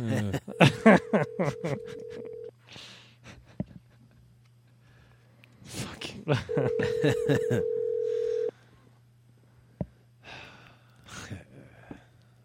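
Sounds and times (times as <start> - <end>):
laughter: 0.0 - 2.3, 6.3 - 7.8
unanswered phone call ringing over the receiver: 1.3 - 2.5, 6.7 - 8.5
breathing: 2.6 - 3.2, 4.8 - 5.5, 8.0 - 9.0, 9.6 - 12.4.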